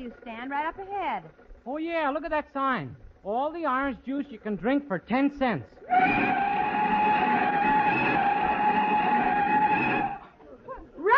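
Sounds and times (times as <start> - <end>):
speech: 0.0 - 6.7
car tires screeching while braking to a stop: 5.9 - 10.3.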